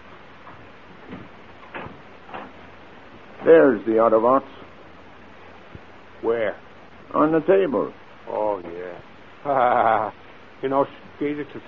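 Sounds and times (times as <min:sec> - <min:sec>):
steady low rumble: 0:00.0 - 0:11.6
study door opened with dull clunks and rattles: 0:00.2 - 0:03.6
speech: 0:03.4 - 0:04.6, 0:06.2 - 0:06.6, 0:07.2 - 0:08.8, 0:09.4 - 0:11.6
laughter: 0:09.4 - 0:10.2.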